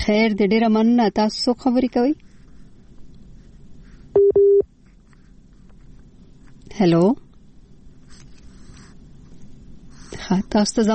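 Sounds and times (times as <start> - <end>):
speech: 0.0 - 2.3, 6.8 - 7.2, 10.2 - 10.9
telephone beeps after a caller's phone line is cut off: 4.2 - 4.6.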